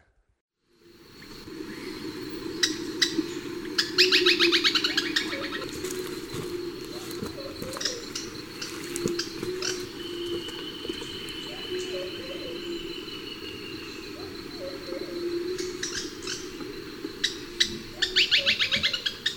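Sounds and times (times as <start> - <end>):
Black-and-White Tody-Flycatcher calling in Ecuador: 0.8 - 19.3.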